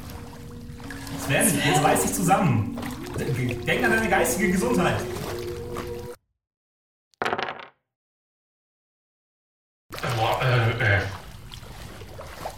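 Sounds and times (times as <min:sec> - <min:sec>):
water sloshing around a person wading chest-deep: 0:00.0 - 0:06.2, 0:09.9 - 0:12.5
speech: 0:01.3 - 0:05.2.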